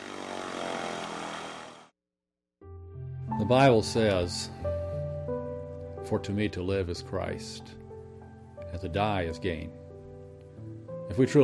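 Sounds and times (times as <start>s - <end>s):
small propeller airplane engine droning: 0.0s - 1.9s
speech: 3.4s - 4.6s, 6.1s - 7.8s, 8.7s - 9.8s, 11.1s - 11.4s.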